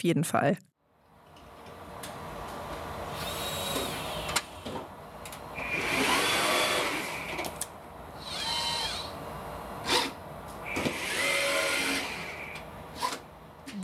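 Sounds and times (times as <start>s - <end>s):
speech: 0.0s - 0.7s
steady hum: 0.0s - 13.8s
lab robot motor whirring while producing brain organoids: 3.2s - 4.4s, 5.6s - 7.5s, 8.2s - 9.1s, 9.8s - 13.2s.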